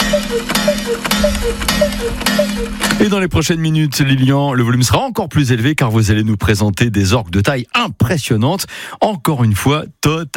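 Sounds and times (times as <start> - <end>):
cuckoo clock calling at a clock exhibition: 0.0 - 3.2
steady low hum: 0.0 - 4.8
speech: 0.3 - 10.3.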